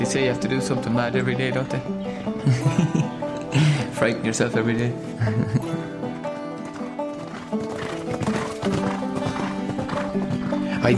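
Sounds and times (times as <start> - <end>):
speech: 0.0 - 5.9
laughter: 2.4 - 4.0, 5.2 - 6.0
horse hooves clopping: 5.6 - 10.9.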